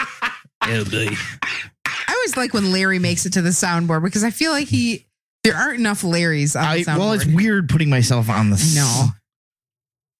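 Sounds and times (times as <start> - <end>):
laughter: 0.0 - 1.4
phlegmy throat clearing from a person with a cold: 0.6 - 2.5
speech: 0.7 - 1.5, 2.3 - 9.2.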